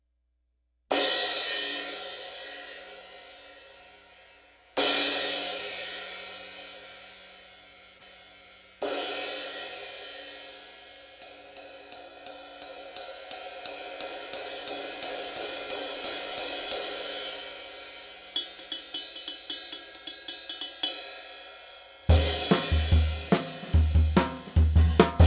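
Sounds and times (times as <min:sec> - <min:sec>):
22 inch A Proto cymbal: 0:00.9 - 0:25.2.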